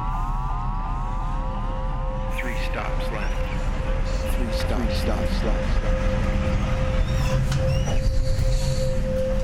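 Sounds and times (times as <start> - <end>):
subway train passing on parallel track: 0.0 - 9.4
speech: 2.6 - 9.2
high-pitched subway train wheel squeals: 7.0 - 8.8.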